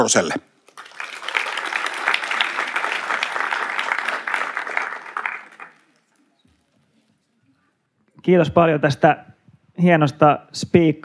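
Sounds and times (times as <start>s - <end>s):
speech: 0.0s - 0.5s, 8.2s - 11.0s
audience applause: 0.7s - 6.3s.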